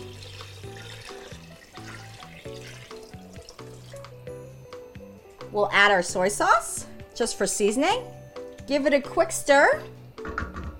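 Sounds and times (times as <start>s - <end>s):
water pouring into a pot of seaweed: 0.0s - 4.1s
light music: 0.0s - 10.7s
speech: 5.5s - 10.0s.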